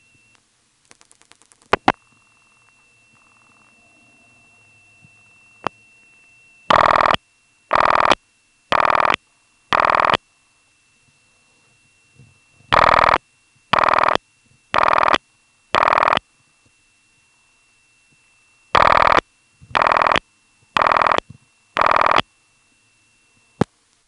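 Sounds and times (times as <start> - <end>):
telephone ringing in a coded pattern from step-by-step exchange: 1.9 - 10.2, 12.7 - 14.2, 14.8 - 15.2, 15.8 - 16.2, 18.7 - 20.2, 20.8 - 21.2, 21.8 - 22.2.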